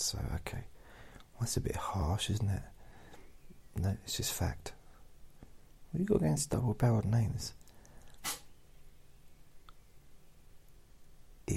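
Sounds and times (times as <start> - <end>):
speech: 0.0 - 0.8, 1.4 - 2.8, 3.8 - 4.8, 5.9 - 7.6
quiet hiss: 0.0 - 11.5
sharp breathy sneeze: 8.2 - 8.5.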